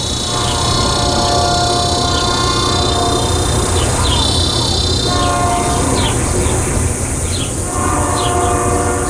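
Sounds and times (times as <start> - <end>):
cicadas droning: 0.0 - 9.0
train rumbling past a house in summer: 0.0 - 9.0.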